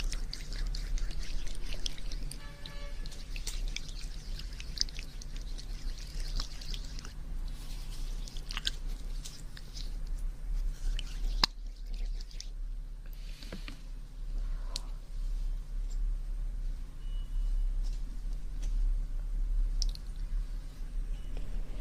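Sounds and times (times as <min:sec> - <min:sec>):
wet ear-cleaning and massage sounds: 0:00.0 - 0:12.6
low steady hum: 0:00.0 - 0:21.8.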